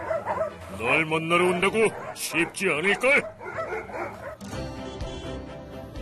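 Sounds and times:
fierce dog barking in a mountain forest: 0.0s - 0.6s, 1.4s - 4.4s
speech: 0.8s - 3.4s.

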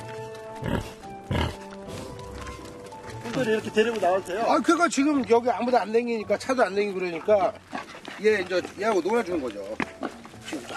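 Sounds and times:
speech: 0.6s - 1.6s, 3.4s - 9.9s
pig grunting outdoors: 0.6s - 1.7s.

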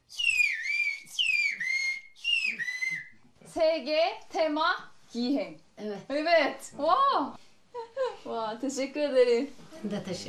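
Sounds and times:
loud whistled phrases in a whistled language: 0.1s - 3.2s
speech: 3.6s - 7.4s, 8.3s - 10.2s.

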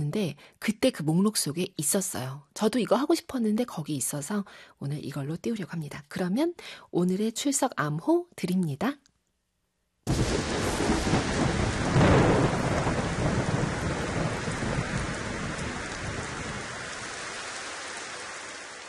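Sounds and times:
speech: 0.0s - 9.1s
deep rumble of thunder: 10.1s - 17.2s
sudden heavy downpour of rain: 10.1s - 18.8s.

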